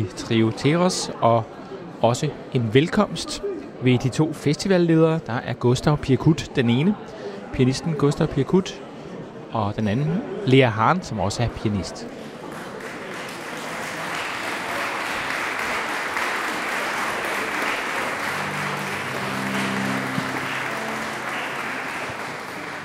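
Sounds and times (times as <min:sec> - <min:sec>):
murmur of voices: 0:00.0 - 0:22.8
speech: 0:00.1 - 0:08.8, 0:09.5 - 0:12.2
audience applause at a music festival: 0:12.2 - 0:22.8.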